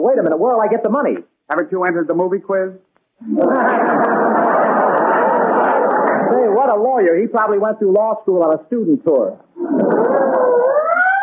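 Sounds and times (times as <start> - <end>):
speech: 0.0 - 4.4, 6.7 - 10.2
laughter: 3.2 - 6.5, 9.6 - 10.6
ambulance siren wailing: 9.6 - 11.2.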